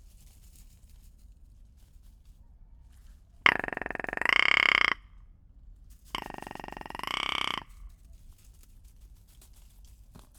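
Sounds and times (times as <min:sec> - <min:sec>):
rock ptarmigan rattle call in Iceland: 0:03.5 - 0:05.0, 0:06.2 - 0:07.8.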